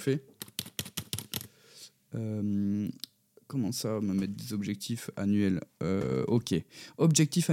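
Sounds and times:
speech: 0.0 - 0.3, 2.1 - 7.5
crisp keystrokes on a computer keyboard: 0.4 - 1.5.

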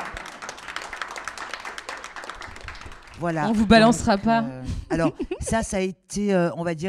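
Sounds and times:
audience applause: 0.0 - 4.3
speech: 3.2 - 6.8.

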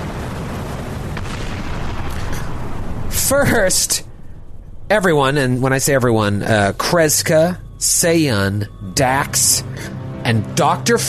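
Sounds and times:
faint explosion booms: 0.0 - 8.0
dense continuous roaring rumble: 0.0 - 11.0
speech: 3.3 - 4.1, 4.9 - 11.0.

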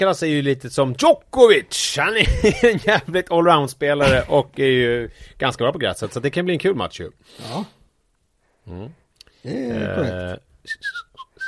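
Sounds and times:
speech: 0.0 - 7.8, 8.7 - 11.1
voiced vocal sound: 8.7 - 10.4
person whistling a tune: 10.6 - 11.4.

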